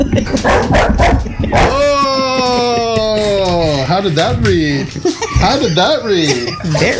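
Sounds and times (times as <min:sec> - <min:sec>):
laughter: 0:00.0 - 0:06.9
bulldog barking at a stuffed coyote: 0:00.4 - 0:01.8
bulldog whine-like howl: 0:01.6 - 0:03.0
speech: 0:04.0 - 0:06.9.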